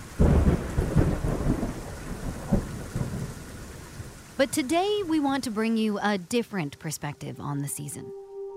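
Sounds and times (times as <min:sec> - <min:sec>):
deep rolling thunder in a monsoon thunderstorm: 0:00.0 - 0:04.4
steady monsoon rainfall: 0:00.0 - 0:08.0
speech: 0:04.4 - 0:08.2.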